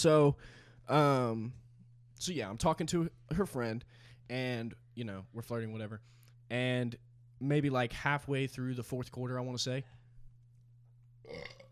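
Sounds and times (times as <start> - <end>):
speech: 0.0 - 1.6, 2.2 - 10.0, 11.2 - 11.6
low steady hum: 0.0 - 11.6
loud burp: 11.2 - 11.6.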